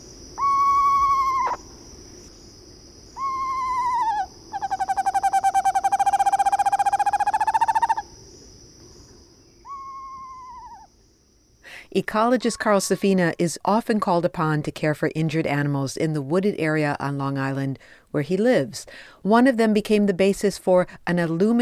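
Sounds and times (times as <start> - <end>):
high insect drone: 0.0 - 13.6
screech owl calling with quavering whistles and pulsing trill: 0.4 - 1.7, 3.1 - 8.2, 9.6 - 10.9
speech: 12.0 - 21.5.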